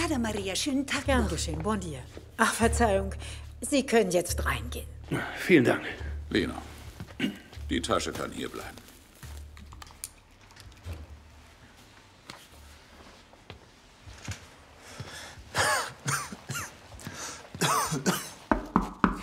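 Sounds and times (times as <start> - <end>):
speech: 0.1 - 8.8, 17.9 - 18.2
harsh coughs: 7.2 - 7.6, 15.6 - 16.8, 17.6 - 18.5.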